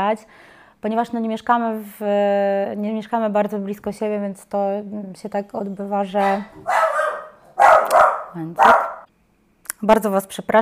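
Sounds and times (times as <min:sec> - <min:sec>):
speech: 0:00.0 - 0:07.0, 0:08.4 - 0:09.0, 0:09.8 - 0:10.5
dog barking: 0:06.2 - 0:09.1.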